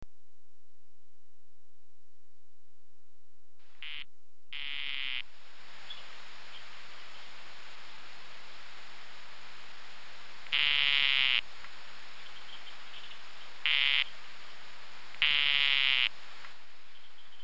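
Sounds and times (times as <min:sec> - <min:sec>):
Dendrobates tinctorius calling: 0:03.7 - 0:07.3, 0:10.4 - 0:11.5, 0:12.2 - 0:14.4, 0:15.1 - 0:16.2.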